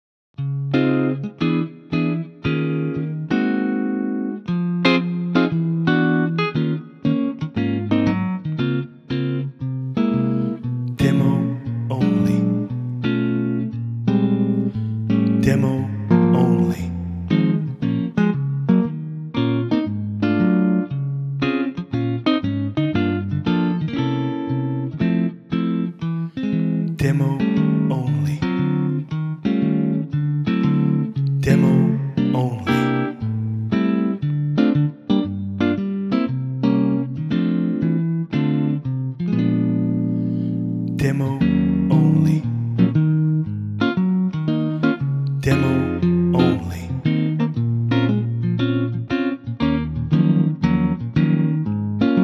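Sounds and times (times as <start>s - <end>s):
sunburst guitar playing in D flat: 0.4s - 52.2s.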